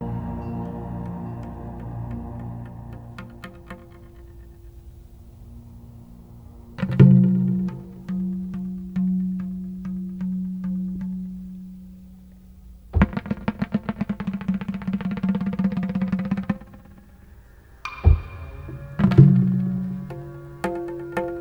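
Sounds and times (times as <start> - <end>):
drums: 0.0 - 21.3.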